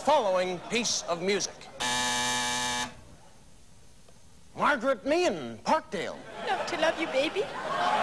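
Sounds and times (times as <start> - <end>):
speech: 0.0 - 1.7, 4.6 - 8.0
quiet room noise: 0.0 - 6.2
laughter: 0.2 - 1.8, 6.2 - 8.0
loud harsh game show contestant buzzer: 1.8 - 3.0.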